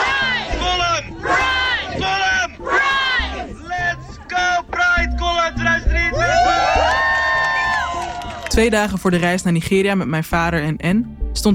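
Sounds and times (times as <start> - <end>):
large crowd shouting a call-and-response chant: 0.0 - 8.0
crowd cheering: 0.0 - 9.5
speech: 8.6 - 11.5.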